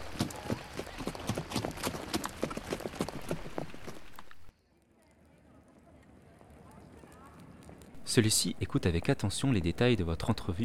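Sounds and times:
horse galloping: 0:00.0 - 0:08.1
speech: 0:08.1 - 0:10.6.

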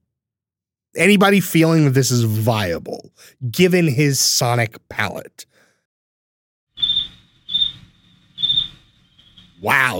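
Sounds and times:
speech: 0:00.9 - 0:05.6, 0:09.6 - 0:09.9
crickets chirping sound effect: 0:06.8 - 0:09.7.

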